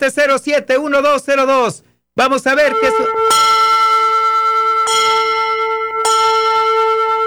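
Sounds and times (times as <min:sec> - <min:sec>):
speech: 0:00.0 - 0:03.5
bell tower bells ringing: 0:02.6 - 0:07.2.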